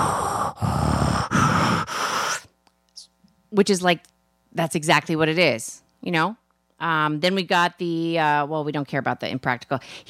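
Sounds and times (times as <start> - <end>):
voice imitating heavy mechanical breathing of a humidifier: 0.0 - 2.5
speech: 3.5 - 10.0.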